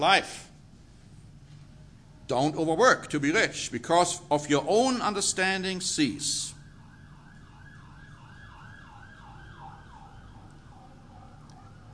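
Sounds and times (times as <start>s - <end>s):
speech: 0.0s - 0.5s, 2.3s - 6.6s
low traffic rumble: 1.6s - 11.9s
emergency vehicle siren wailing: 6.0s - 11.9s.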